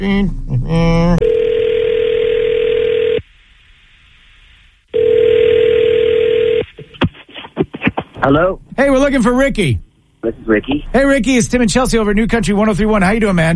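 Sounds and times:
speech: 0.0 - 1.2, 8.3 - 13.5
telephone line ringing with long buzzing rings: 1.2 - 3.2, 5.0 - 6.6.

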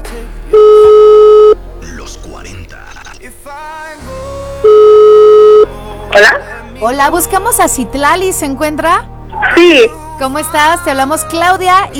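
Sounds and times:
telephone ringing tone on an outgoing call: 0.6 - 1.6, 4.6 - 6.4
speech: 6.2 - 11.9.

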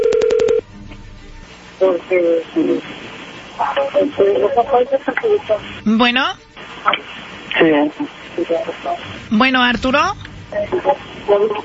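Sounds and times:
phone keypad dialing tones: 0.0 - 0.6
speech: 1.8 - 3.0, 3.6 - 11.6.

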